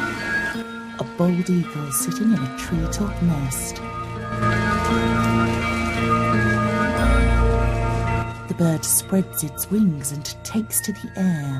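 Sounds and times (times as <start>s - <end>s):
low tonal hum: 0.0s - 11.5s
speech: 1.2s - 5.5s, 8.6s - 11.5s
rain on the branches of a pine tree in a misty mountain forest: 4.4s - 9.8s.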